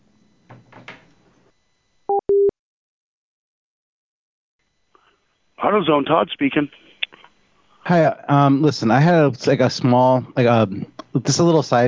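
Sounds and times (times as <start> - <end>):
telephone busy tone after a caller hangs up: 2.1 - 2.5
speech: 5.7 - 6.8, 7.9 - 11.8.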